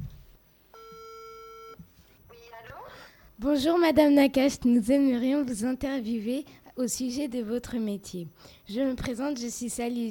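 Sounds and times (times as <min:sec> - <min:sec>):
telephone ringback tone on an outgoing call: 0:00.8 - 0:01.8
speech: 0:03.4 - 0:10.0.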